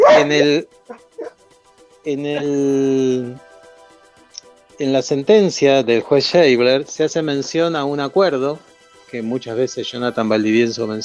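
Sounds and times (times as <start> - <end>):
dog barking and howling while coming to greet: 0.0 - 1.4
speech: 0.2 - 1.1, 2.0 - 3.5, 4.8 - 11.0.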